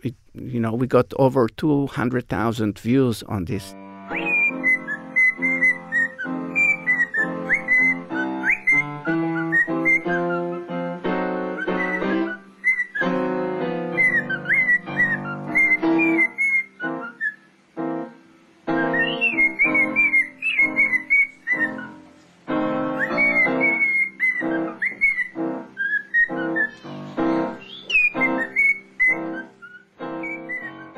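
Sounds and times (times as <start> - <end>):
speech: 0.0 - 4.2
parrot whistling: 4.1 - 10.8, 11.4 - 17.6, 18.7 - 22.0, 22.9 - 30.9.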